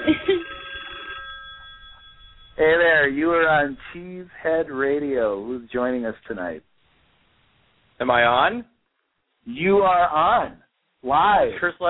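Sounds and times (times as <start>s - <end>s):
telephone ringing for an incoming call, thin narrowband electronic ring: 0.0s - 3.9s
speech: 3.0s - 6.7s, 8.0s - 8.7s, 9.4s - 11.8s.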